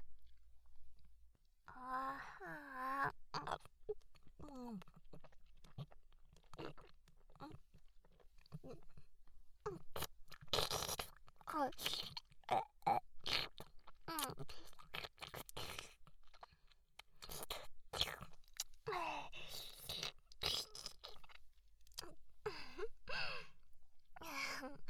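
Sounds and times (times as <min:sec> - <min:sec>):
quiet vocal sounds: 0:01.6 - 0:24.8
wet chewing of a bite of omelette rice: 0:03.4 - 0:09.1, 0:13.2 - 0:18.8, 0:19.7 - 0:22.0.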